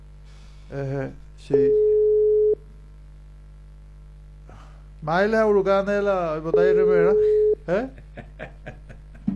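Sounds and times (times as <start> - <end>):
speech: 0.7 - 1.9, 5.0 - 8.8
telephone line tone on an unanswered call: 1.7 - 2.6, 6.5 - 7.6
laughter: 7.7 - 9.3.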